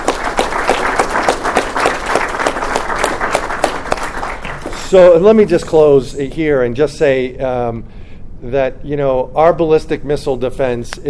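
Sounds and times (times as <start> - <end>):
room full of people applauding: 0.0 - 5.0
speech: 4.9 - 11.0.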